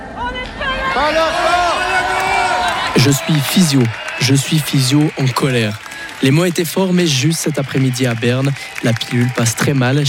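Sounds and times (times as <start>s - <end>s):
large crowd shouting in unison at a street protest: 0.0s - 4.2s
speech: 1.0s - 1.6s, 3.0s - 10.0s.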